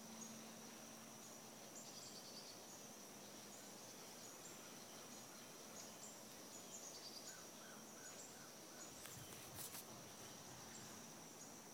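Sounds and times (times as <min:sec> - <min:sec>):
cicada droning on one high tone: 0:00.0 - 0:11.7.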